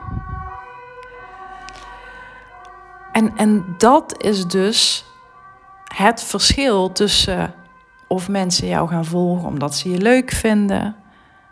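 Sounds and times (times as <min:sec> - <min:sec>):
low rumble: 0:00.0 - 0:00.6
emergency vehicle sirens wailing: 0:00.0 - 0:11.5
faint traffic noise: 0:00.0 - 0:11.5
speech: 0:03.2 - 0:05.1, 0:06.0 - 0:11.0.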